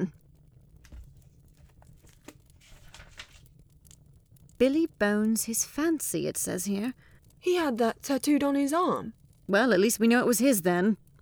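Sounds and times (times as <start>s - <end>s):
paper packet holding a book and a sealed paper being torn open: 2.1s - 3.5s
speech: 4.6s - 11.0s.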